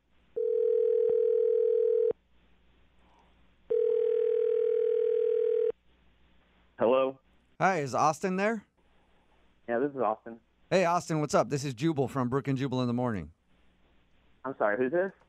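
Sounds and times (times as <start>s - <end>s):
telephone dial tone: 0.4s - 2.1s, 3.7s - 5.7s
speech: 7.8s - 8.7s, 9.9s - 13.4s, 14.4s - 15.2s.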